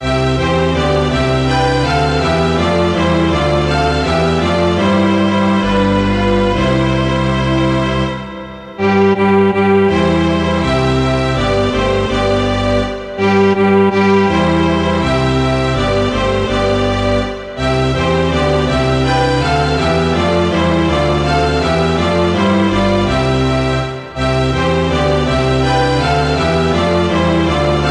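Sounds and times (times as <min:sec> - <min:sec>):
string orchestra playing a folk song: 0:00.0 - 0:27.8.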